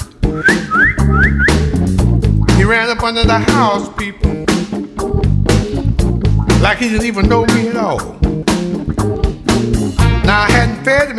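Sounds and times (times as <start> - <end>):
band music with thumping beats: 0.0 - 11.1
speech: 0.3 - 0.5, 2.7 - 4.4, 6.6 - 9.1, 10.3 - 11.1
person whistling to call a dog: 0.3 - 1.7.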